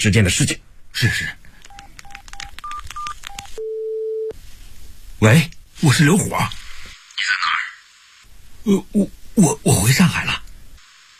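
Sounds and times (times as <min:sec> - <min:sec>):
speech: 0:00.0 - 0:01.4, 0:05.2 - 0:06.6, 0:08.6 - 0:10.4
mobile phone keypad dialing tones: 0:01.7 - 0:04.3.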